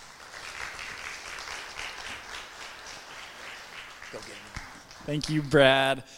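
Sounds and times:
church audience applauding to welcome a guest speaker: 0.0s - 5.9s
speech: 4.1s - 6.1s.

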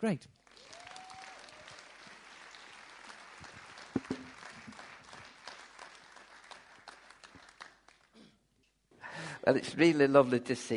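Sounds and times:
speech: 0.0s - 0.4s, 9.4s - 10.7s
audience at a morning gathering in Long Eaton applauding: 0.4s - 8.2s.

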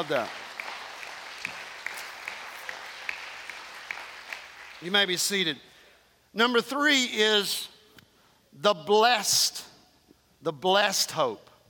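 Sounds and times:
speech: 0.0s - 0.4s, 4.8s - 5.7s, 6.3s - 7.7s, 8.6s - 9.7s, 10.4s - 11.5s
audience clapping rhythmically in praise: 0.0s - 5.3s.

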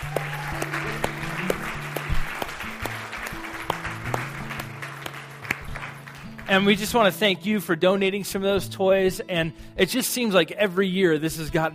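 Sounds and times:
audience applause for a youth team after a toy drive: 0.0s - 6.8s
speech: 0.2s - 0.7s, 6.5s - 11.7s.

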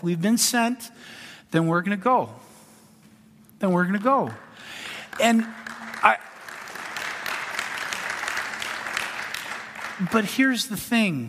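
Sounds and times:
speech: 0.0s - 2.5s, 3.6s - 6.3s, 10.0s - 11.2s
church congregation applauding: 4.3s - 11.2s.

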